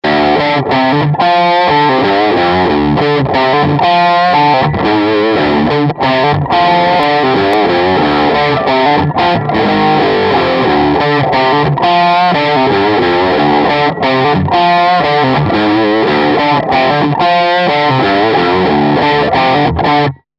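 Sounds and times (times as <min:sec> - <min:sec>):
DigiTech GSP1101 crunch tone: 0:00.0 - 0:20.3.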